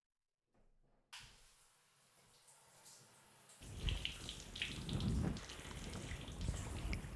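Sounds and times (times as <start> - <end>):
lukewarm water pouring over hair during a salon hair wash: 3.6 - 7.1.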